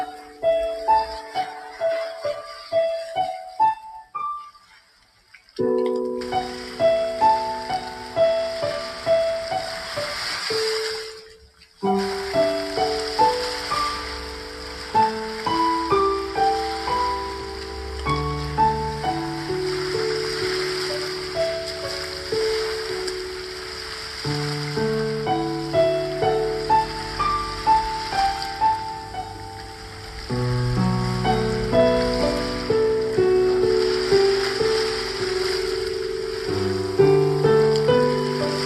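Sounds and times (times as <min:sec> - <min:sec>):
ocean waves breaking on shore: 0:00.0 - 0:04.4, 0:05.6 - 0:38.6
gentle piano tune: 0:00.0 - 0:38.6.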